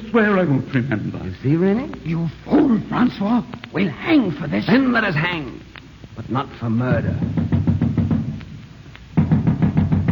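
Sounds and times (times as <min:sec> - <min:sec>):
speech: 0:00.1 - 0:07.4
heavy rapid pounding on a door: 0:06.9 - 0:08.4, 0:09.1 - 0:10.1.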